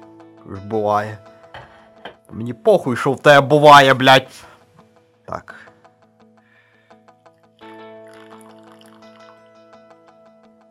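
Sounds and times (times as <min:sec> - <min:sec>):
speech: 0:00.5 - 0:01.3, 0:02.3 - 0:04.5, 0:05.3 - 0:05.7
coffee dripping: 0:08.0 - 0:09.5
liquid pouring in a splashing stream: 0:08.0 - 0:09.5.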